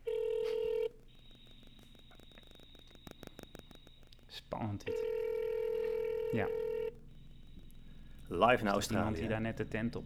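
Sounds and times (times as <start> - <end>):
telephone ringback tone over speakerphone while calling Australia: 0.0 - 1.5, 4.9 - 7.7
telephone line noise over speakerphone: 0.0 - 4.2, 4.8 - 9.2
speech: 4.4 - 5.2, 6.3 - 6.7, 8.3 - 10.0.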